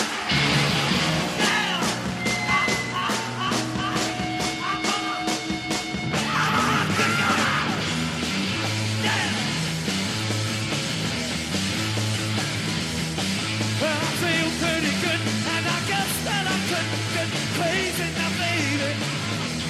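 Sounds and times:
distorted guitars of a live rock band: 0.0 - 19.6
raw strained vocal screaming and yelling over a rock band: 6.2 - 7.8.

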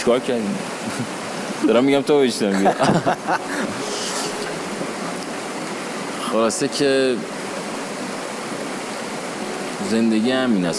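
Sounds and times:
speech: 0.0 - 3.6, 6.3 - 7.3, 9.9 - 10.7
river water rushing: 0.0 - 10.7
laughter: 2.5 - 4.5.

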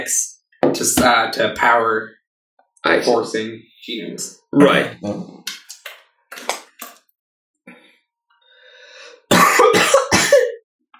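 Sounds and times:
speech: 0.0 - 2.2, 2.8 - 5.5
person coughing: 9.3 - 10.6.

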